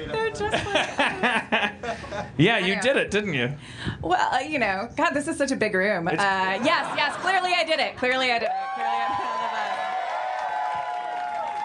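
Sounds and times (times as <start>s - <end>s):
speech: 0.0s - 1.4s, 2.4s - 9.2s
laughter: 0.4s - 2.4s
audience cheering: 8.4s - 11.6s
scattered voices whooping and calling out: 8.4s - 11.6s.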